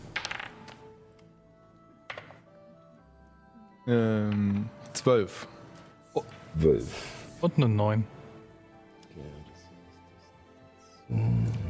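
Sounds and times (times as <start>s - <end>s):
dice clattering on a hard surface: 0.0s - 0.9s, 2.1s - 2.5s
speech: 3.9s - 8.2s.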